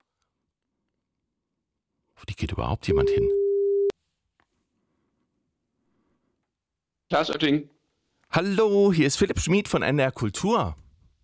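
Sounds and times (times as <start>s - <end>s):
speech: 2.2s - 3.4s, 7.1s - 10.8s
telephone ringing tone on an outgoing phone call: 2.9s - 3.9s.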